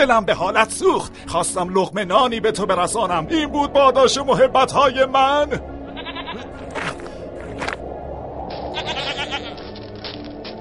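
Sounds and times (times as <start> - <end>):
speech: 0.0 - 5.7
sheep bleating: 5.8 - 6.6, 8.7 - 9.7.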